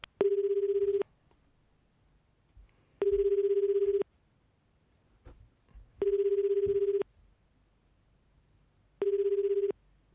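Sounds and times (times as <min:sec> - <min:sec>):
faint noise: 0:00.0 - 0:10.1
telephone ringing tone while a call is placed: 0:00.2 - 0:01.0, 0:03.0 - 0:04.0, 0:06.0 - 0:07.1, 0:09.0 - 0:09.8.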